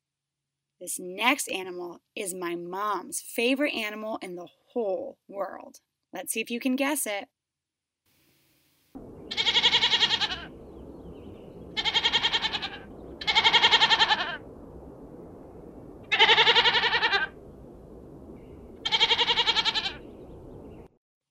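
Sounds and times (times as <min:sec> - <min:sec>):
speech: 0:00.8 - 0:07.3
low rumble: 0:09.0 - 0:20.9
goat bleating: 0:09.3 - 0:10.5, 0:11.8 - 0:14.4, 0:16.1 - 0:17.3, 0:18.8 - 0:20.0.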